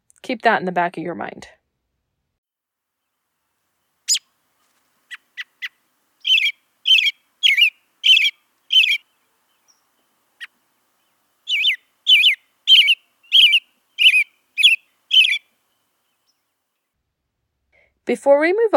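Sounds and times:
speech: 0.3 - 1.6, 18.1 - 18.7
robin singing with airy thrush-like notes: 3.8 - 4.3, 5.1 - 16.5.

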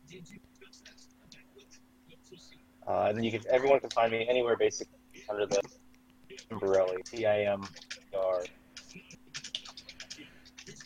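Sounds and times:
faint steady electrical hum: 0.0 - 10.8
speech: 0.2 - 5.8, 6.4 - 9.2
typing on a computer keyboard: 6.3 - 8.1, 8.8 - 10.8.

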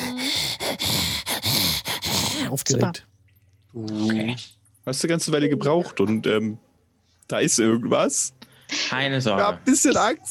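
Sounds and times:
voice imitating heavy rasping monster breathing: 0.0 - 2.6
speech: 2.5 - 3.1, 3.7 - 6.6, 7.3 - 10.3.

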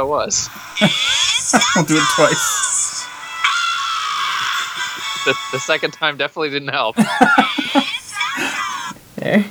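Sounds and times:
speech: 0.0 - 2.7, 5.2 - 7.8, 9.2 - 9.4
laughter: 0.4 - 9.0
cartoon creature screaming: 0.5 - 9.0.

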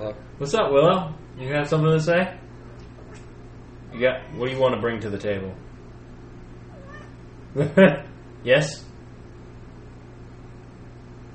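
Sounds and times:
speech: 0.1 - 2.4, 4.0 - 5.7, 7.6 - 8.9
cat meowing: 6.7 - 7.2.

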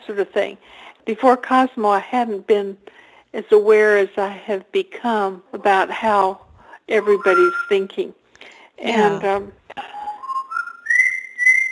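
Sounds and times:
speech: 0.1 - 8.2, 8.8 - 10.0
pet bird whistling a rising series of notes: 6.9 - 7.9, 10.0 - 11.7.

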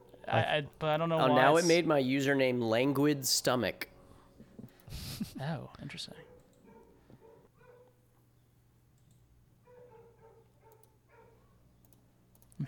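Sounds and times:
speech: 0.3 - 3.9, 5.4 - 6.3
dog barking: 6.2 - 7.9, 9.6 - 11.7.

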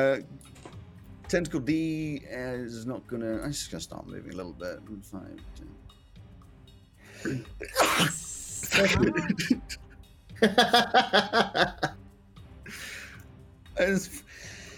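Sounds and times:
speech: 0.0 - 0.6, 1.3 - 5.9, 7.2 - 12.0, 13.8 - 14.5
person sneezing: 7.2 - 9.7
voice sounds: 7.3 - 9.8
laughter: 8.6 - 9.8, 10.4 - 11.9
breathy gasps: 12.7 - 13.2, 14.3 - 14.7.

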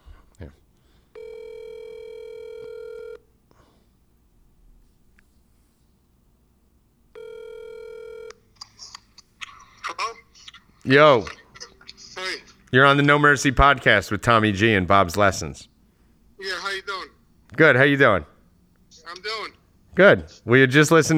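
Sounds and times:
speech: 0.4 - 0.6, 10.9 - 11.4, 12.7 - 15.7, 17.6 - 18.3, 20.0 - 21.1
phone call ringback tones: 1.2 - 3.2, 7.2 - 8.4.

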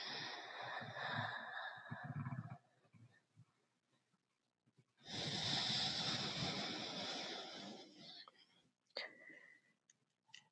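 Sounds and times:
slow breaths drawn in and out through the throat muscles: 0.0 - 2.7, 5.0 - 9.7.

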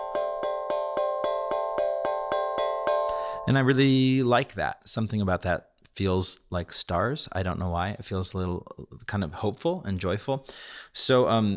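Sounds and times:
small hand drum struck in the center, all notes at once: 0.0 - 3.2
speech: 3.5 - 11.5.

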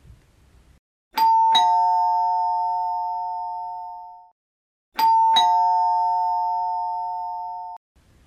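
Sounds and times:
doorbell two-tone chime: 1.2 - 4.3, 5.0 - 7.8.

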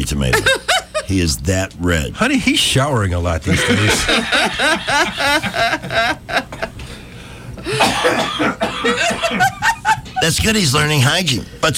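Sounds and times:
speech: 0.0 - 6.5, 7.7 - 11.7
laughter: 0.2 - 1.2, 3.5 - 6.9, 8.7 - 10.4
wheezy laugh-like gasps in a studio: 6.8 - 7.8
person coughing fit in a studio: 7.6 - 9.4.

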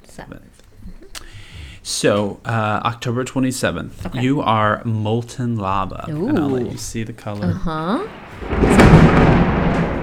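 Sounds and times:
speech: 1.9 - 9.2
loud thunder clap rolling into heavy rumble: 8.0 - 10.0.

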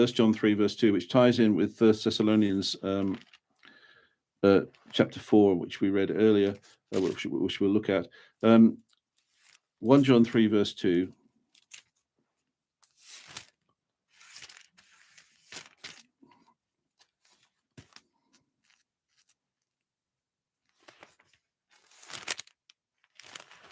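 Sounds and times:
speech: 0.0 - 3.4, 4.4 - 8.8, 9.8 - 11.2
thin Bible pages being turned by hand: 2.4 - 3.4, 6.4 - 7.4, 9.1 - 9.7, 11.5 - 12.0, 12.8 - 16.2, 16.9 - 19.7, 20.7 - 23.6.

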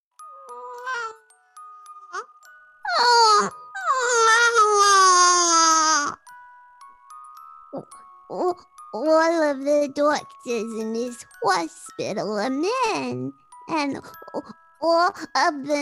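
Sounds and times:
newborn baby crying and wailing: 0.4 - 1.2, 2.9 - 6.2
speech: 9.0 - 15.8.

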